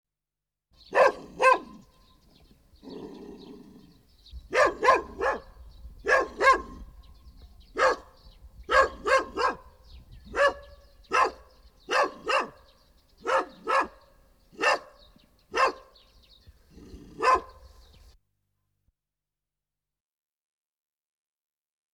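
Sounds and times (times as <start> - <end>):
dog barking: 0.9 - 1.8, 4.5 - 7.0, 7.7 - 16.0, 16.8 - 17.9.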